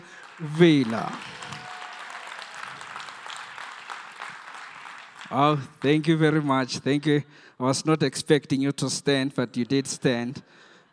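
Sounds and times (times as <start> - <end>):
crowd applauding for a preacher: 0.0 - 7.2
speech: 0.4 - 1.3, 5.3 - 10.7.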